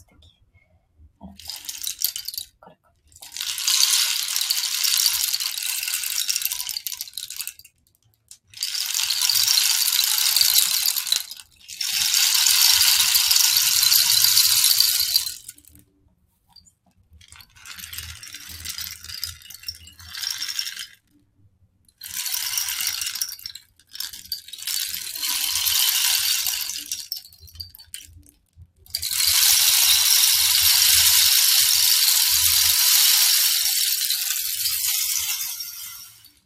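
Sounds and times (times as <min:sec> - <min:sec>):
rain stick tilted back and forth with beads pouring: 0:01.2 - 0:15.8, 0:17.2 - 0:21.2, 0:22.0 - 0:28.3, 0:28.9 - 0:36.4.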